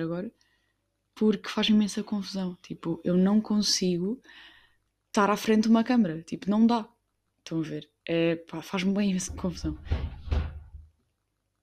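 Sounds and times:
speech: 0:00.0 - 0:00.5, 0:01.2 - 0:04.5, 0:05.2 - 0:10.1
heavy doors banging shut: 0:09.3 - 0:10.9.

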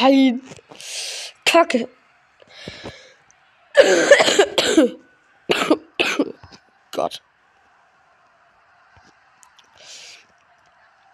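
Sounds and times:
speech: 0:00.0 - 0:02.0, 0:02.6 - 0:03.0, 0:03.8 - 0:06.3, 0:07.0 - 0:07.3
person coughing fit: 0:03.8 - 0:06.4.

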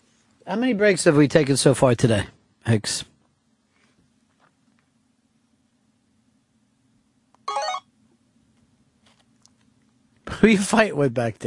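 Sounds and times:
low hum: 0:00.0 - 0:11.4
speech: 0:00.5 - 0:03.1, 0:10.4 - 0:11.4
studio phone ringing: 0:07.5 - 0:07.9.

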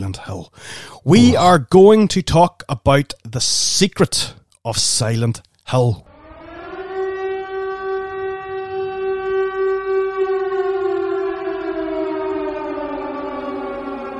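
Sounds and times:
speech: 0:00.0 - 0:06.1
civil defense air raid siren wailing: 0:06.0 - 0:14.1.

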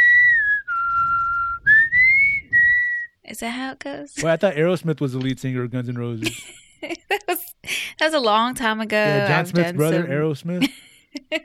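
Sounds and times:
person whistling a short melodic tune: 0:00.0 - 0:03.2
speech: 0:03.3 - 0:06.9, 0:08.0 - 0:11.4.

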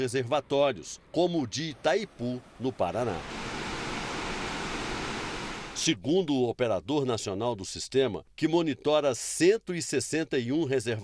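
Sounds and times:
speech: 0:00.0 - 0:03.4, 0:05.8 - 0:11.0
water rushing through open floodgates of a hydroelectric dam in Minas Gerais: 0:01.7 - 0:05.8.

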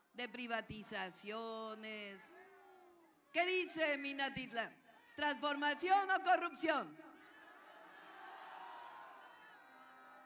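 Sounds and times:
speech: 0:00.2 - 0:02.4, 0:03.3 - 0:07.0
large stadium crowd in Minatitlán Mexico shouting and cheering: 0:02.0 - 0:03.2, 0:07.2 - 0:10.2.

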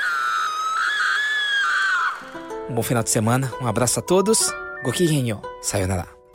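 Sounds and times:
long piercing scream: 0:00.0 - 0:02.4
speech: 0:02.7 - 0:06.2.

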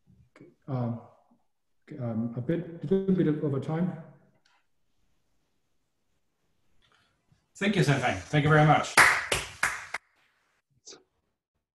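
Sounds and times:
speech: 0:00.7 - 0:01.1, 0:01.9 - 0:04.1, 0:07.6 - 0:09.1
applause transmitted over a video call: 0:08.1 - 0:10.3.

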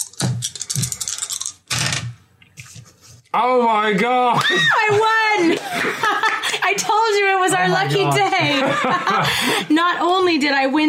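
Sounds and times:
dice rattling and clattering across a hard surface: 0:00.0 - 0:02.0
speech: 0:03.4 - 0:10.8
laughter: 0:04.4 - 0:09.8.

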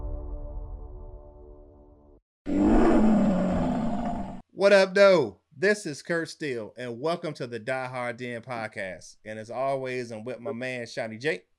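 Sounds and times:
deep powerful roar: 0:02.5 - 0:04.4
speech: 0:04.7 - 0:11.5.

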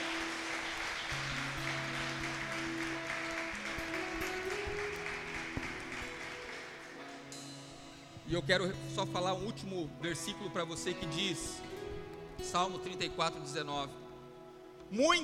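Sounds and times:
audience applauding: 0:00.0 - 0:07.3
speech: 0:08.3 - 0:11.6, 0:12.4 - 0:14.0, 0:14.9 - 0:15.2.

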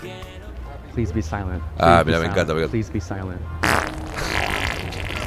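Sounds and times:
speech: 0:01.0 - 0:03.6
loud sputtering fart: 0:03.6 - 0:05.2.

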